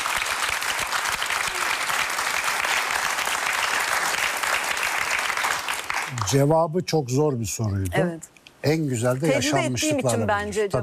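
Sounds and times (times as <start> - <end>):
audience applause: 0.0 - 6.5
speech: 6.2 - 10.8.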